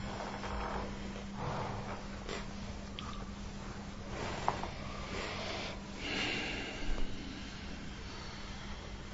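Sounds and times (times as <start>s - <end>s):
faint steady hum: 0.0s - 9.1s
slow deep breathing in and out: 4.0s - 9.1s.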